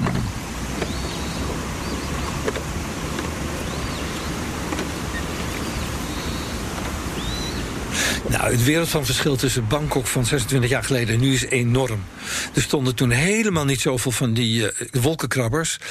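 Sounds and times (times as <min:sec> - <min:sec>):
birds chirping: 0:00.0 - 0:12.6
water lapping: 0:00.0 - 0:12.6
boat engine rumbling on a klong in Bangkok Thailand: 0:00.0 - 0:15.2
speech: 0:08.4 - 0:15.9.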